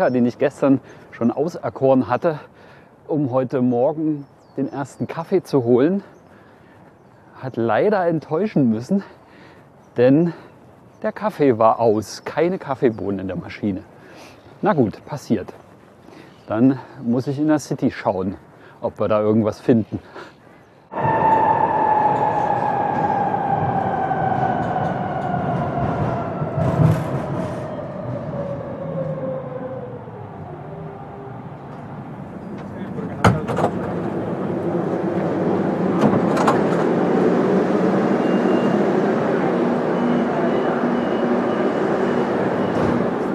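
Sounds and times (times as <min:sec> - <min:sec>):
speech: 0:00.0 - 0:06.2, 0:07.4 - 0:09.2, 0:10.0 - 0:15.6, 0:16.5 - 0:21.2
moving subway train rumble with high whining tone: 0:20.9 - 0:43.3.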